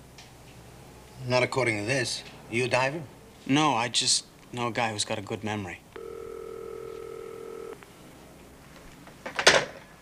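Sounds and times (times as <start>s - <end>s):
speech: 1.2s - 5.8s
telephone ringing with a steady electronic tone: 6.0s - 7.8s.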